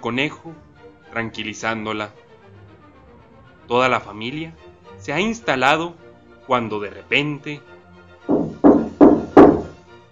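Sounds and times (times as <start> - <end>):
speech: 0.0 - 2.2, 3.7 - 7.7
heavy knocks on a wooden door: 8.3 - 9.8.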